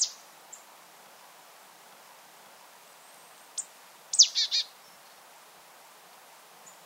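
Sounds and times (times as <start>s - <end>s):
marsh tit Poecile palustris calls: 4.2s - 4.7s.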